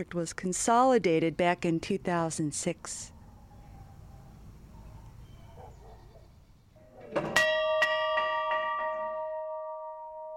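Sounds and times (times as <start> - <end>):
speech: 0.0 - 3.2
large old school hand bell clanging: 7.2 - 10.3.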